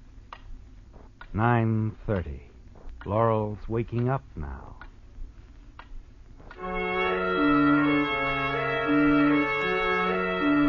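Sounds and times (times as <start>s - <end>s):
low steady hum: 0.0s - 10.6s
clock ticking: 0.2s - 5.0s
speech: 1.3s - 4.8s.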